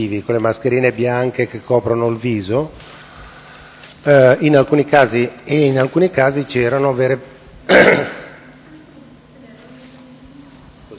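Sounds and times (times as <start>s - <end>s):
speech: 0.0s - 2.9s, 4.0s - 8.2s
cough: 7.7s - 8.4s
throat clearing: 7.7s - 8.4s.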